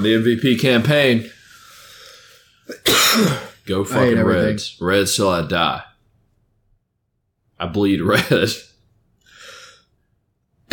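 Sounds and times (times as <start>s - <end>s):
speech: 0.0s - 1.4s, 2.7s - 5.9s, 7.6s - 8.7s
person coughing: 2.7s - 3.6s.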